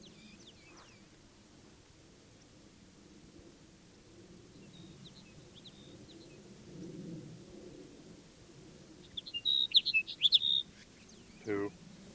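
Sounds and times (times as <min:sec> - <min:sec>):
Sage Sparrow singing: 0:00.0 - 0:01.1, 0:04.5 - 0:06.4, 0:09.0 - 0:12.0.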